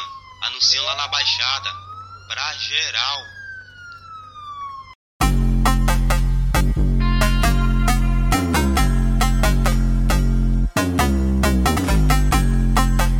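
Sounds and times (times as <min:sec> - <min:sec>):
police siren wailing: 0:00.0 - 0:05.0, 0:07.0 - 0:10.3
speech: 0:00.6 - 0:03.4
loud heavy music beat with deep bass and punchy drums: 0:05.2 - 0:13.1.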